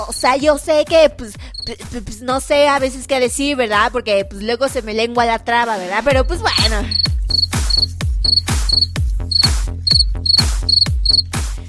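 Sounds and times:
speech: 0:00.2 - 0:09.0
cricket chirping: 0:01.6 - 0:01.8, 0:06.9 - 0:11.3
steady deep thumping beat: 0:06.1 - 0:11.4.

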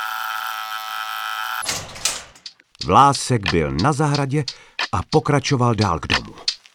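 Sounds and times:
steady electric buzz: 0:00.0 - 0:02.4
code lock unlocking with a sharp click: 0:01.6 - 0:02.5
gate swinging open with a rattling swish: 0:01.6 - 0:02.5
clunks: 0:01.6 - 0:02.6
speech: 0:02.9 - 0:06.5.

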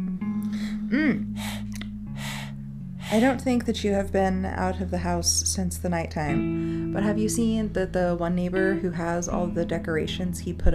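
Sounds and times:
vocal gasp: 0:00.4 - 0:03.4
breathy panting: 0:00.5 - 0:03.4
speech: 0:03.1 - 0:10.7.

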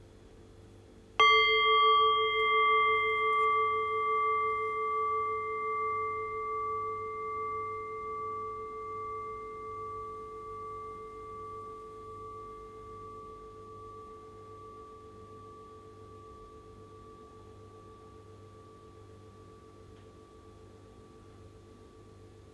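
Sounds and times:
low hum: 0:00.0 - 0:22.5
single bell struck, ringing clear and resonant: 0:01.2 - 0:10.0.

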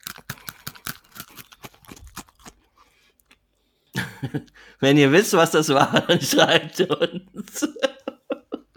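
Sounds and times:
chewing crackles of candied grilled grasshoppers: 0:00.0 - 0:03.5
speech: 0:04.2 - 0:07.9
laughter: 0:05.8 - 0:08.7.

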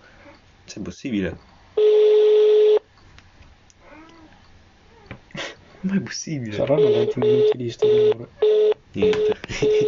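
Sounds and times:
speech: 0:00.7 - 0:01.9, 0:05.8 - 0:09.8
ringback tone of an outgoing phone call: 0:01.8 - 0:02.8, 0:06.8 - 0:09.8
faint meow-like sounds: 0:03.8 - 0:05.2
laughter: 0:09.0 - 0:09.8.

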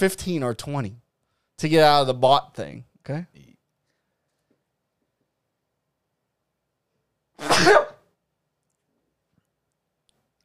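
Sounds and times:
speech: 0:00.0 - 0:01.0, 0:01.6 - 0:03.5, 0:07.4 - 0:07.9
person sneezing: 0:07.4 - 0:08.1.

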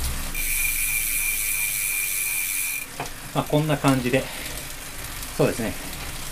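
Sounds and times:
freewheel ratchet of a direct-drive bike trainer clicking with stopped pedals: 0:00.4 - 0:02.9
speech: 0:03.0 - 0:04.5, 0:05.4 - 0:06.0.

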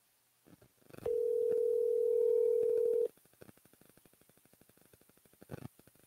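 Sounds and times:
telephone dial tone while calling a number again: 0:01.1 - 0:03.1.

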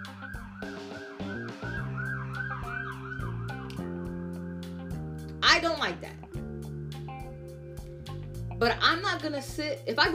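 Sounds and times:
ambulance siren wailing: 0:00.0 - 0:05.1
speech: 0:05.5 - 0:06.2, 0:08.6 - 0:10.1.

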